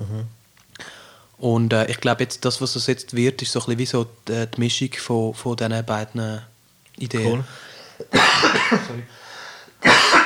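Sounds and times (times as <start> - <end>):
speech: 1.4 - 9.2
loud harsh coughs: 7.2 - 9.1, 9.8 - 10.2.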